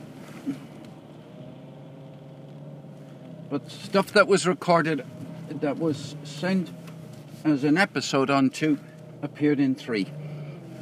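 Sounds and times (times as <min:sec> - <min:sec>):
car engine humming at low revs while parking: 0:00.0 - 0:10.8
speech: 0:03.5 - 0:06.8, 0:07.4 - 0:10.2.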